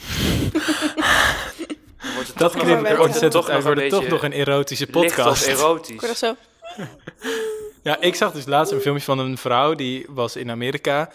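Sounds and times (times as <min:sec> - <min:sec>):
heavy panting breaths into microphone: 0:00.0 - 0:02.4
laughter: 0:00.5 - 0:04.3, 0:06.6 - 0:09.2
speech: 0:02.4 - 0:11.1.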